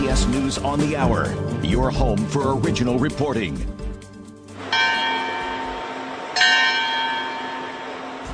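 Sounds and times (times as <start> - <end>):
speech: 0.2 - 3.8
church bells ringing at the Vatican: 4.6 - 8.3.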